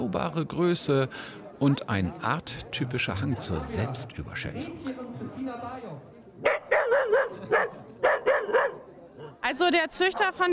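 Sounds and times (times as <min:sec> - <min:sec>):
speech: 0:00.1 - 0:07.8, 0:09.4 - 0:10.5
dachshund whiny drawn-out yelp: 0:06.4 - 0:08.8
dachshund barking sharply: 0:06.4 - 0:09.4.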